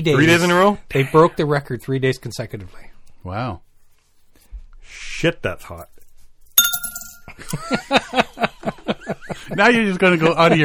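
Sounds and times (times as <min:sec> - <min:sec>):
speech: 0:00.0 - 0:03.6, 0:04.9 - 0:05.9, 0:07.4 - 0:10.6
coins dropped into a glass: 0:06.6 - 0:07.5.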